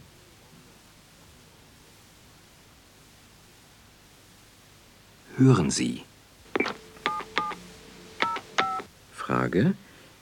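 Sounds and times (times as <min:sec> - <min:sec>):
speech: 0:05.4 - 0:06.1, 0:09.3 - 0:09.8
touch-tone dialing of a telephone number: 0:06.6 - 0:07.6, 0:08.2 - 0:08.9.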